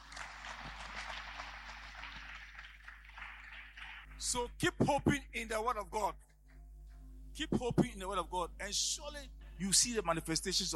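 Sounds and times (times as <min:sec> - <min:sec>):
crowd clapping: 0:00.0 - 0:04.4
speech: 0:04.2 - 0:06.2, 0:07.4 - 0:10.7.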